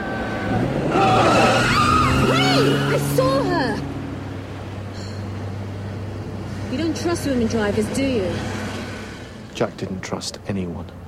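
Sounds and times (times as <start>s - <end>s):
car engine: 0.0s - 11.0s
car tires screeching as a car swerves at night: 0.0s - 11.0s
speech: 6.7s - 8.6s, 9.6s - 11.0s.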